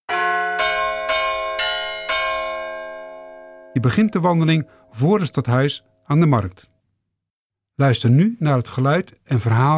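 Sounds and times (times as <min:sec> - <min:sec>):
carillon bells from a town-hall tower: 0:00.1 - 0:05.5
speech: 0:03.8 - 0:06.7, 0:07.8 - 0:09.7.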